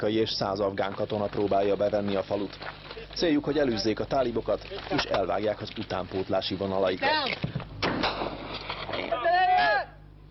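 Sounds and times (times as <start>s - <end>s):
speech: 0.0s - 7.6s
outdoor noise: 0.0s - 10.2s
warning gunshot with a brief echo: 7.8s - 8.5s
man shouting: 9.1s - 10.0s.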